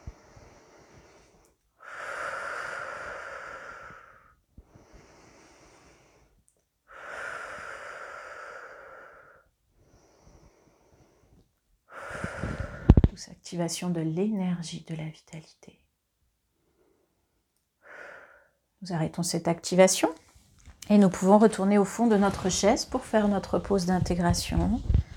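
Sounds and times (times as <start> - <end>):
deep breathing during a guided breathing exercise: 0.0 - 13.1, 16.6 - 18.6, 24.8 - 25.1
speech: 13.5 - 15.8, 18.8 - 20.3, 20.9 - 25.0.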